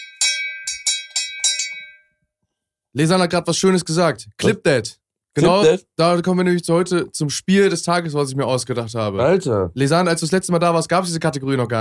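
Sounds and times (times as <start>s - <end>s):
small bell ringing: 0.0s - 2.2s
speech: 2.9s - 11.7s.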